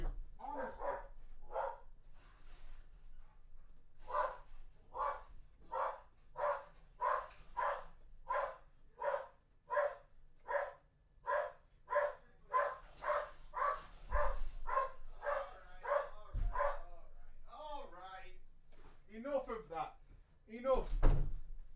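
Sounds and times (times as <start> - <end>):
dog barking rapidly: 0.5 - 1.9, 4.0 - 17.0
door thudding open and shut for a delivery: 14.0 - 14.6, 16.3 - 16.8, 20.8 - 21.7.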